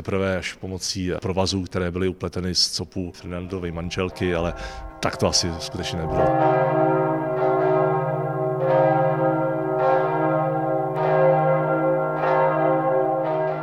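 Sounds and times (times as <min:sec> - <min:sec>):
speech: 0:00.0 - 0:07.1
large church bells ringing: 0:03.4 - 0:13.6.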